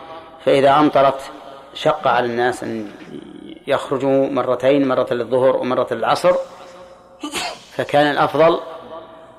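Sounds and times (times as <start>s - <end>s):
speech: 0.4s - 6.6s, 7.2s - 8.7s
person sneezing: 7.2s - 7.8s.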